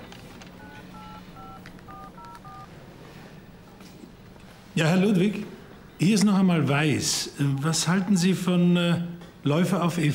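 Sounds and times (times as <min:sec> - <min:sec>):
low hum: 0:00.0 - 0:10.1
dual-pitched touch-tone beeps of telephone number being dialed: 0:00.6 - 0:02.7
speech: 0:04.8 - 0:10.1.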